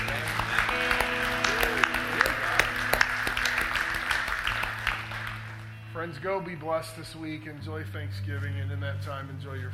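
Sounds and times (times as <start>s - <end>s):
large audience applauding: 0.0s - 5.8s
speech: 6.2s - 9.7s.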